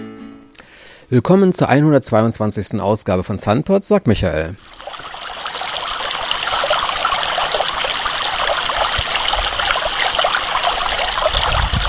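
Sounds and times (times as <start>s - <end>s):
speech: 1.1s - 5.2s
water flowing down a flowform cascade: 4.7s - 11.8s.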